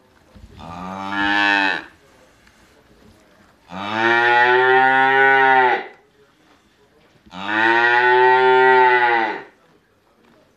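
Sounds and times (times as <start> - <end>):
calves in a barn calling for their mothers with low moos: 0.6 - 1.9, 3.7 - 5.9, 7.3 - 9.5.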